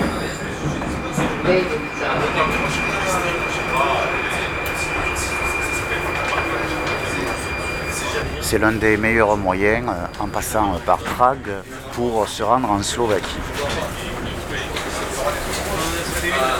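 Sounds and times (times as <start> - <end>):
faint high whine of a metro train: 0.0 - 10.8
Prague metro train rumbling inside a carriage: 0.0 - 16.5
voices murmuring: 0.0 - 16.5
speech: 1.5 - 2.6, 8.5 - 14.2.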